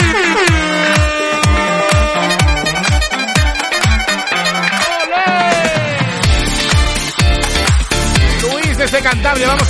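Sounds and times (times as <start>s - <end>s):
horn honking: 0.0s - 7.2s
thumping rhythmic music track: 0.0s - 9.6s.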